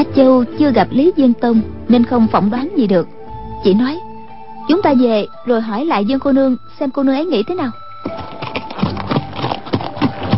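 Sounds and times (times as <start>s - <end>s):
speech: 0.0s - 4.1s, 4.7s - 8.3s
galloping horse hoofbeats: 8.0s - 10.3s.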